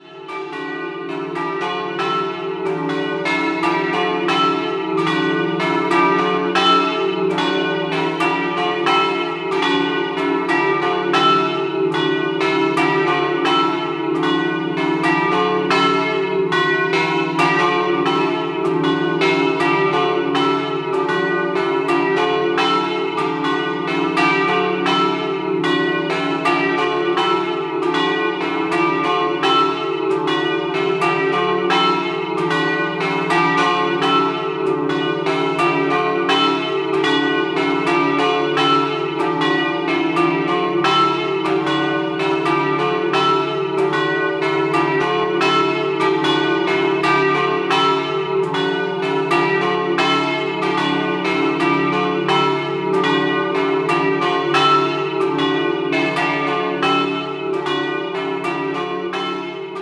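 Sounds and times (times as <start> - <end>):
bells ringing in Tiezzo: 0.0 - 59.8.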